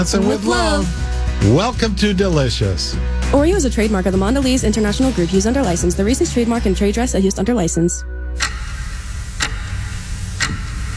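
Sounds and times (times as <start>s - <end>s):
speech: 0.0s - 8.2s
clock ticking: 8.4s - 10.9s
low steady hum: 8.4s - 10.9s.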